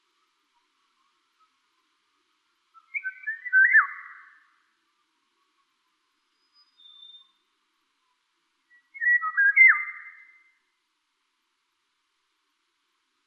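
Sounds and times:
Eurasian golden oriole Oriolus oriolus fluting whistled song: 2.8s - 4.6s, 6.3s - 7.4s, 8.7s - 10.6s.

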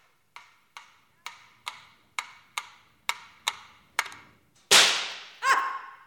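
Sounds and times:
dry clicks: 0.0s - 4.7s
air-rifle shot at a shooting gallery: 4.7s - 5.3s.

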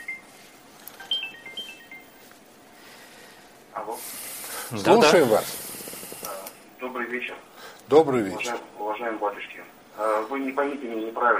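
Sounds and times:
soft room hiss: 0.0s - 11.3s
mobile phone ringtone of thin high electronic tones: 1.0s - 2.3s
speech: 3.9s - 5.6s, 7.1s - 11.3s.

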